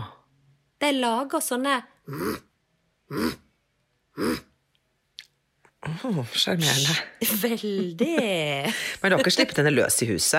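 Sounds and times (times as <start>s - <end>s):
speech: 0.8s - 2.5s, 3.1s - 3.4s, 4.2s - 4.5s, 5.8s - 10.3s
voice imitating a rabbit growl with raspy grunting bursts: 2.0s - 4.6s
laughter: 7.2s - 9.7s.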